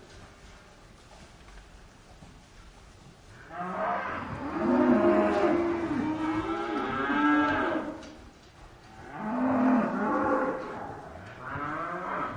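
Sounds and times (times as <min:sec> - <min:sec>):
steady background noise: 0:00.0 - 0:12.3
cow mooing inside a barn: 0:03.5 - 0:08.0, 0:09.0 - 0:12.3.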